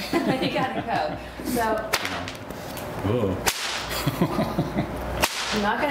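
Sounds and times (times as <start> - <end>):
laughter: 0.0 - 1.4, 3.9 - 5.0
speech: 0.1 - 4.8, 5.6 - 5.8
loud sharp whip crack: 1.9 - 2.2, 3.4 - 3.9, 5.2 - 5.7.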